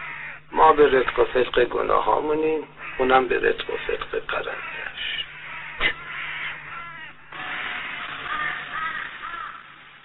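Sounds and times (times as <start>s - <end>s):
crows cawing: 0.0s - 0.6s, 2.7s - 3.5s, 4.3s - 9.8s
speech: 0.8s - 4.9s.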